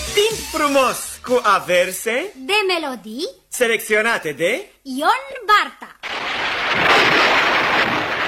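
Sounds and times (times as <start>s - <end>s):
speech: 0.3s - 5.9s
thunder sound effect: 6.1s - 8.2s.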